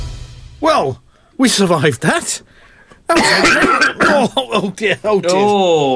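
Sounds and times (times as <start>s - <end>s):
speech: 0.8s - 5.9s
big harsh hacking cough: 3.1s - 4.4s.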